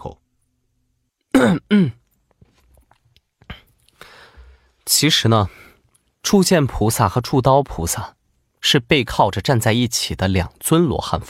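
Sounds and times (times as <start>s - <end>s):
man coughing: 1.3s - 2.0s
speech: 1.4s - 2.0s, 4.9s - 5.6s, 6.2s - 11.2s.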